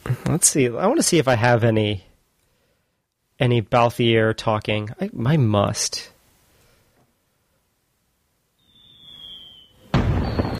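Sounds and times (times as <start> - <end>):
speech: 0.3 - 2.1, 3.4 - 6.1
thin high whistling tone in a video game cutscene: 8.6 - 10.5
loud video game cutscene explosion: 9.9 - 10.5.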